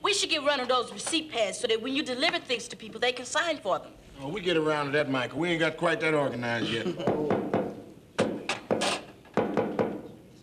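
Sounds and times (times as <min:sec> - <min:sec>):
speech: 0:00.2 - 0:07.4
knocking on a door: 0:07.0 - 0:10.1.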